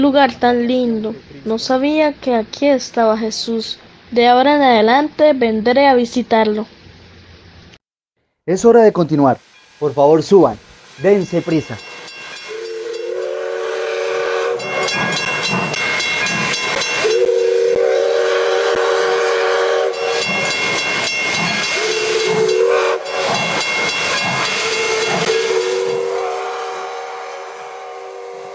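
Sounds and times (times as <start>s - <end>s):
speech: 0.0s - 6.8s, 8.5s - 11.9s
hissing steam from a steam train: 8.8s - 28.5s
steam train whistle: 10.9s - 28.5s.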